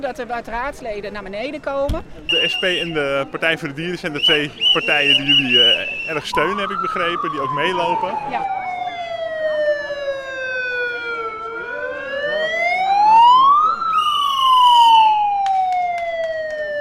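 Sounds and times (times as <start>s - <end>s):
speech: 0.0s - 8.6s
electronic siren mounted on walkers wailing: 5.1s - 16.7s.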